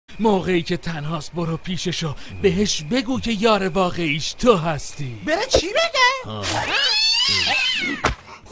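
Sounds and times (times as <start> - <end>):
speech: 0.2 - 8.2
cat meowing in a drawn-out high wavering call: 6.6 - 7.9.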